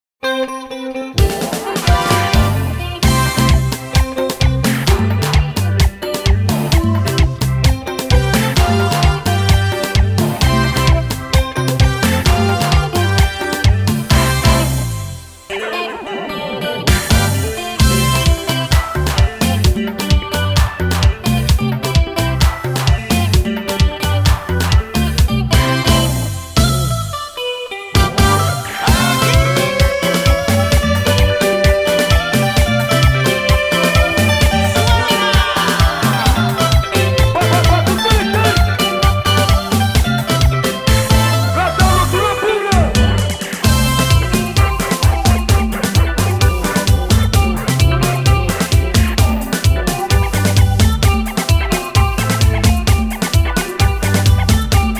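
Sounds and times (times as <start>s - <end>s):
champeta dance music: 1.2s - 54.9s.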